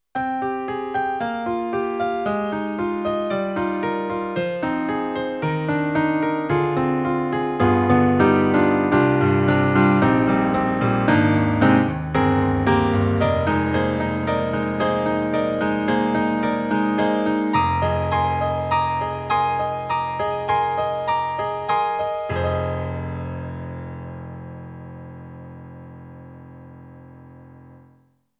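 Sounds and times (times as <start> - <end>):
easy rocker piano on Roland SRX-07 XV-5050: 0.2 - 28.0.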